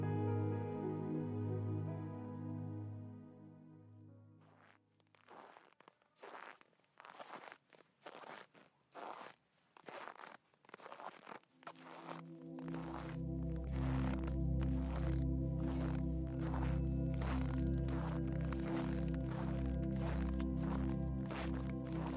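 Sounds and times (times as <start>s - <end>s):
low sustained musical drone: 0.0s - 4.4s, 12.2s - 22.1s
boots crunching through thick snow: 4.4s - 22.1s.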